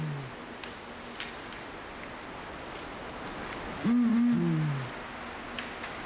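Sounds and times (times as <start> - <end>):
hissing night background: 0.0 - 6.0
Blakiston's fish owl hooting by Lake Akan in Hokkaido, Japan: 3.8 - 4.9.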